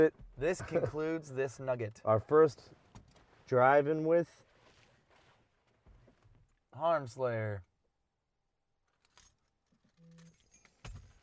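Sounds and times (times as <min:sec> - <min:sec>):
speech: 0:00.0 - 0:02.8, 0:03.5 - 0:04.4, 0:06.8 - 0:07.7
keys jangling: 0:09.0 - 0:11.2.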